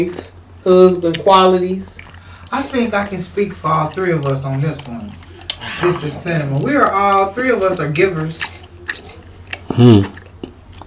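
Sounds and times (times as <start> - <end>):
speech: 0.0 - 8.6, 9.8 - 10.2
loud gum chewing with wet smacks: 0.1 - 10.8.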